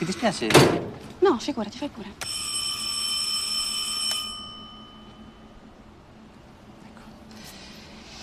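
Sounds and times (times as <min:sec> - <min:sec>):
speech: 0:00.0 - 0:02.4
low room hum: 0:00.0 - 0:08.2
electric doorbell ringing: 0:02.2 - 0:05.6.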